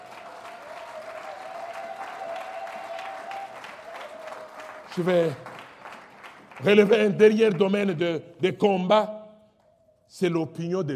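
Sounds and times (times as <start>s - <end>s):
congregation clapping during a church service: 0.0s - 8.1s
speech: 5.0s - 5.5s, 6.6s - 9.2s, 10.1s - 10.9s.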